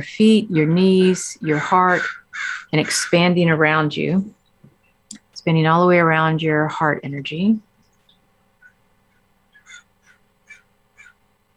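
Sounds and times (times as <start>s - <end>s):
speech: 0.0s - 4.4s, 5.4s - 7.7s
low background hum: 0.0s - 11.5s
crows cawing: 1.0s - 3.4s, 9.5s - 11.2s.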